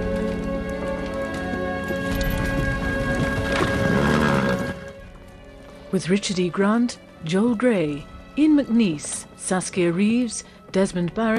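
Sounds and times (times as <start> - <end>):
horse hooves of a horse-drawn hearse clip-clopping: 0.0 - 6.4, 8.4 - 11.3
horse whinnying: 3.2 - 4.9
speech: 5.9 - 11.3.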